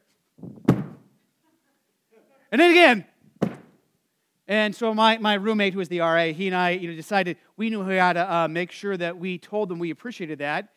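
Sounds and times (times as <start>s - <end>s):
boots stomping on the floor above in a college dorm: 0.4s - 1.0s, 3.4s - 3.7s
speech: 2.5s - 3.1s, 4.5s - 10.7s.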